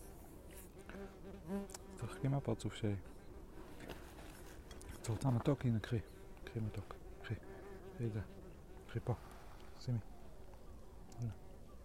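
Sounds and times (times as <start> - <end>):
bee buzzing: 0.0 - 9.2
speech: 2.2 - 3.1, 5.1 - 10.1, 11.2 - 11.4.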